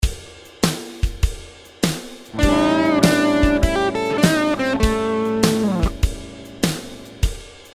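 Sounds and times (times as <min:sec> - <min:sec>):
blues note bend: 0:02.4 - 0:07.4.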